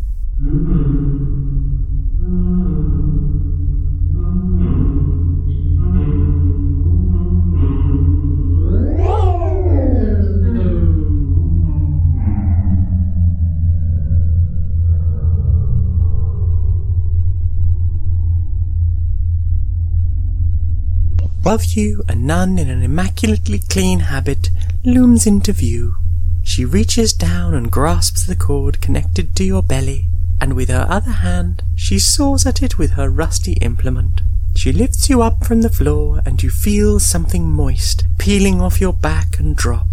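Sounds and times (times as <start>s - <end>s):
deep steady rumble: 0.0s - 39.9s
strange eerie humming drone with shifting layered tones: 0.0s - 39.9s
speech: 21.5s - 39.9s.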